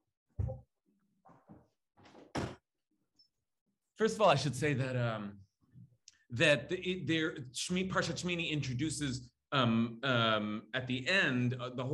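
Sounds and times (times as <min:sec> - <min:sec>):
heavy door thumping shut: 0:02.1 - 0:02.6
speech: 0:04.0 - 0:05.4, 0:06.3 - 0:11.9.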